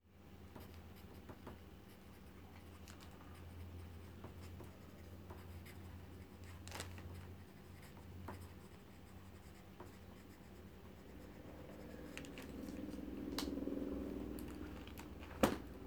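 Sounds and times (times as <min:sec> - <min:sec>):
writing: 0:00.5 - 0:13.1
book closing: 0:14.4 - 0:15.7.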